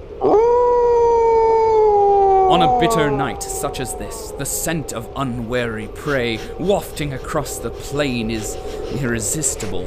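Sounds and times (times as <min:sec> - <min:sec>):
wolf howling: 0:00.2 - 0:06.6
speech: 0:02.5 - 0:09.8.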